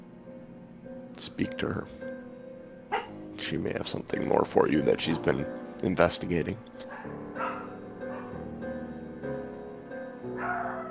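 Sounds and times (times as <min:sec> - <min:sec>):
speech: 0:01.2 - 0:02.1, 0:03.4 - 0:07.2
pet dogs barking and yipping: 0:02.9 - 0:03.3, 0:06.8 - 0:08.5, 0:10.3 - 0:10.8.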